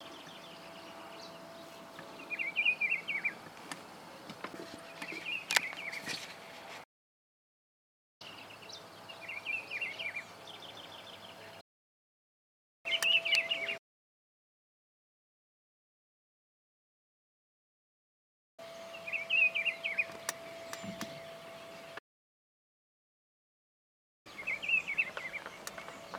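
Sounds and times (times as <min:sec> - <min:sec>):
Juan Chiviro bird call: 0:00.0 - 0:06.5, 0:08.2 - 0:11.6, 0:12.9 - 0:13.8, 0:18.6 - 0:22.0, 0:24.3 - 0:26.1.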